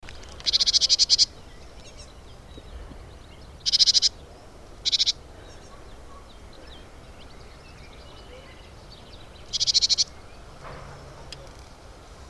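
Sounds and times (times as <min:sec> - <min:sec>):
soft steady background hiss: 0:00.0 - 0:12.2
Great tit Parus major rasping churr calls: 0:00.5 - 0:02.2, 0:03.2 - 0:10.5.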